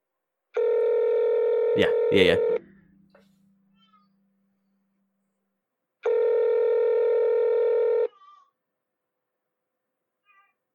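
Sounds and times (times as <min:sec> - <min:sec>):
ringback tone of an outgoing phone call through an earpiece: 0:00.6 - 0:02.6, 0:06.0 - 0:08.1
speech: 0:01.8 - 0:02.7.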